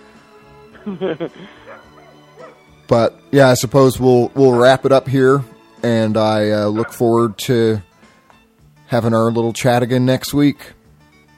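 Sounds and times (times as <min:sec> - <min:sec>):
laughter: 0:00.7 - 0:02.0
speech: 0:00.8 - 0:01.9, 0:02.9 - 0:07.9, 0:08.9 - 0:10.8
dog barking: 0:01.6 - 0:02.6, 0:04.5 - 0:04.8, 0:06.8 - 0:07.0.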